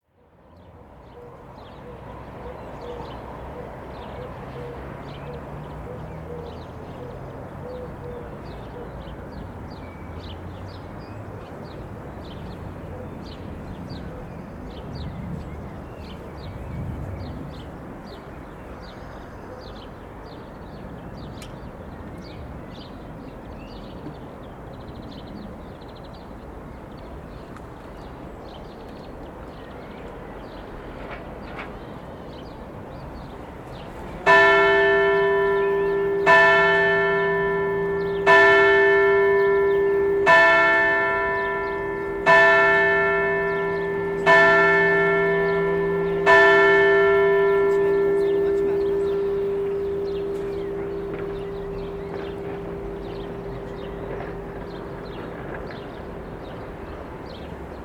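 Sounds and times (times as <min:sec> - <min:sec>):
bell ringing at a summit: 0:34.3 - 0:56.2.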